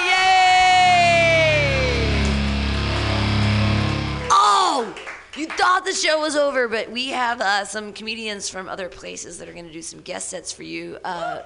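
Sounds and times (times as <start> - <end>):
long whoop sliding downward in pitch: 0.0 - 2.3
comedy show audience clapping and cheering: 0.0 - 5.9
speech: 5.8 - 11.4.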